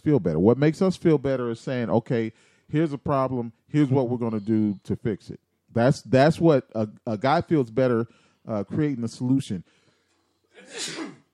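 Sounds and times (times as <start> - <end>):
speech: 0.0 - 9.8, 10.6 - 11.2
sneeze: 10.6 - 11.3.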